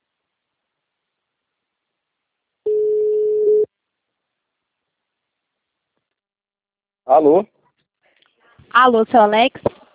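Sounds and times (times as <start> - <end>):
telephone line tone after a dropped call: 2.7 - 3.7
speech: 7.1 - 7.6, 8.7 - 9.7.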